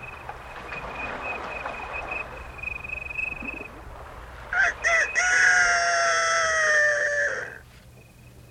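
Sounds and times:
outdoor hum: 0.0 - 8.4
rooster crowing: 4.5 - 7.6.

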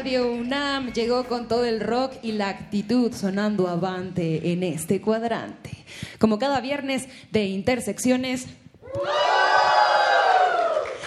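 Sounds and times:
speech: 0.0 - 10.1
crowd shouting and cheering: 8.8 - 11.0.

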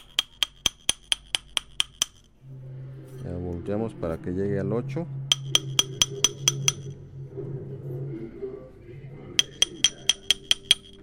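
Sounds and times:
small hammer tapping silver ring to size: 0.0 - 2.3, 5.3 - 7.0, 9.4 - 11.0
low steady hum: 0.0 - 11.0
speech: 3.7 - 5.2.

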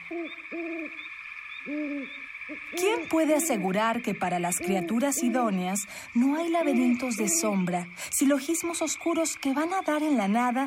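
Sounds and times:
owl hooting: 0.0 - 7.8
steady high-pitched drone of insects or hiss: 0.0 - 10.6
speech: 0.1 - 1.0, 1.6 - 10.6.

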